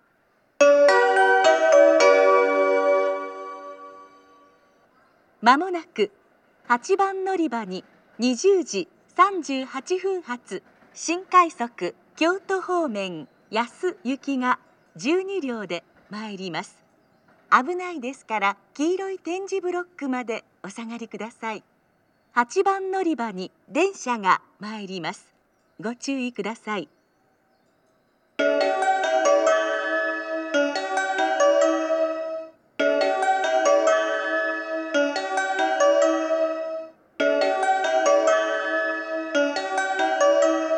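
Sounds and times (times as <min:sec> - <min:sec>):
train station ambience at JR-West Amagasaki station with special rapid service: 0:00.0 - 0:40.7.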